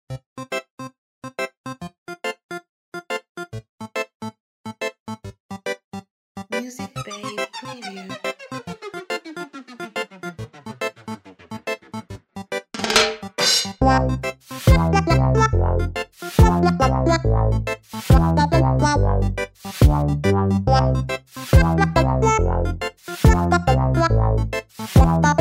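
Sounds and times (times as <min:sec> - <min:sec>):
cartoon electro reggae music: 0:06.5 - 0:12.2, 0:12.8 - 0:25.3.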